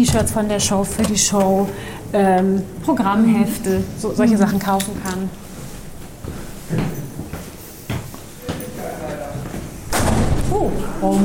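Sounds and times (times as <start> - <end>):
speech: 0.0 - 5.4, 11.0 - 11.2
dull thuds against a closed door: 9.9 - 10.6.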